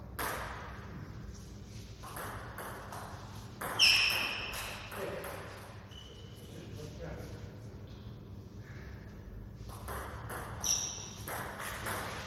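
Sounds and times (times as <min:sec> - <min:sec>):
low hum of a hall: 0:00.0 - 0:12.2
table tennis ball ping: 0:00.2 - 0:00.7, 0:02.0 - 0:05.6, 0:09.7 - 0:12.2.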